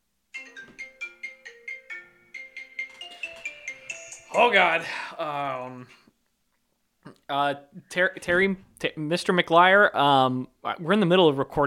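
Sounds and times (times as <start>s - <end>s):
phone ringtone playing a bright melodic electronic tune: 0.4s - 4.4s
speech: 4.4s - 6.1s, 7.3s - 11.6s.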